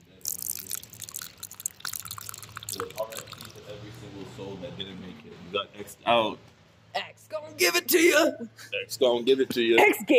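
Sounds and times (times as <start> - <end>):
drink being poured out splashing onto the ground: 0.2 - 3.7
speech: 2.8 - 6.6, 7.4 - 10.1.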